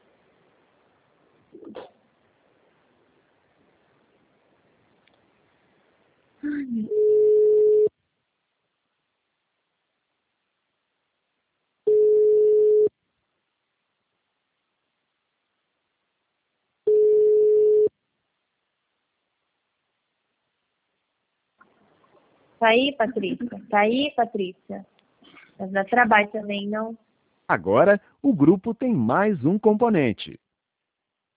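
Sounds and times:
speech: 0:06.6 - 0:07.1, 0:22.6 - 0:24.9, 0:25.6 - 0:30.4
telephone ringback tone while a call is being placed: 0:06.9 - 0:07.9, 0:11.9 - 0:12.9, 0:16.9 - 0:17.9.

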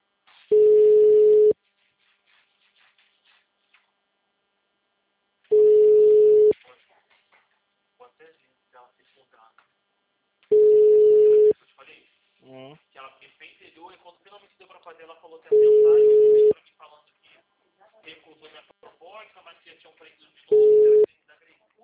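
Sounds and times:
telephone ringback tone from a call ringing out: 0:00.5 - 0:01.6, 0:05.5 - 0:06.5, 0:10.5 - 0:11.5, 0:15.5 - 0:16.5, 0:20.5 - 0:21.1.

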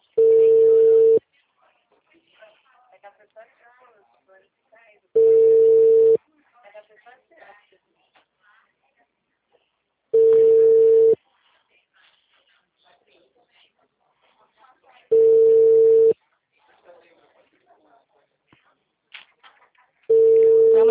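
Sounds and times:
telephone ringing unanswered: 0:00.2 - 0:01.2, 0:05.2 - 0:06.2, 0:10.2 - 0:11.2, 0:15.1 - 0:16.2, 0:20.1 - 0:20.8.

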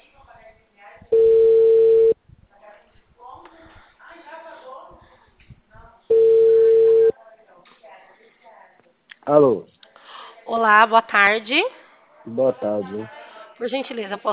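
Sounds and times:
telephone ringing tones of a call being placed: 0:01.1 - 0:02.2, 0:06.1 - 0:07.1
speech: 0:09.3 - 0:09.7, 0:10.6 - 0:14.3.

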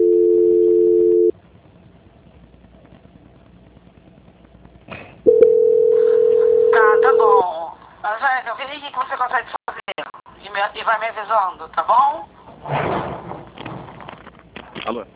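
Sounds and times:
telephone tones on the line during a call transfer: 0:00.0 - 0:01.3, 0:05.3 - 0:07.4
people talking: 0:06.4 - 0:12.3.

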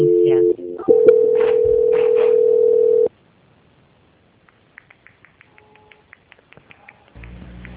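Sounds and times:
telephone line tone during a call transfer: 0:00.0 - 0:03.1
faint clicks: 0:04.4 - 0:07.7.

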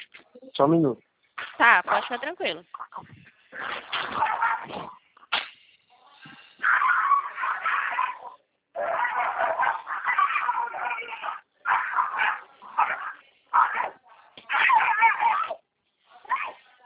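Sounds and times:
speech: 0:00.6 - 0:05.0
dog whimpering and yipping: 0:06.6 - 0:13.0, 0:14.5 - 0:15.6.

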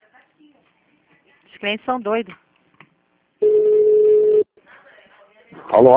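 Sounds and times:
speech: 0:01.6 - 0:02.4, 0:05.8 - 0:05.9
telephone busy tone beep after a dropped call: 0:03.4 - 0:04.4.

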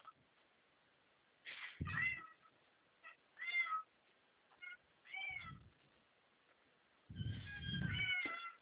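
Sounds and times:
cat meowing: 0:01.9 - 0:02.5, 0:03.1 - 0:03.9, 0:04.6 - 0:05.6, 0:07.2 - 0:08.5.

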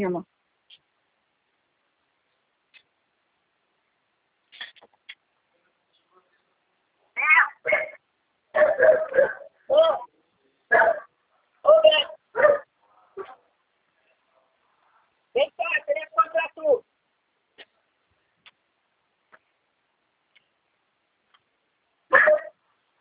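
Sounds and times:
speech: 0:00.0 - 0:00.4, 0:08.6 - 0:10.1, 0:11.6 - 0:12.6, 0:15.4 - 0:16.9
dog barking: 0:07.3 - 0:09.6, 0:10.7 - 0:11.1, 0:12.0 - 0:13.5, 0:22.1 - 0:22.6.

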